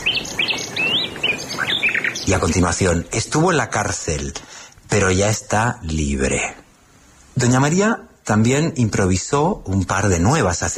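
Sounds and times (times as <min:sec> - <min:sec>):
birds chirping and singing: 0:00.0 - 0:05.6
light hiss: 0:00.0 - 0:10.7
speech: 0:02.3 - 0:06.6, 0:07.4 - 0:10.7.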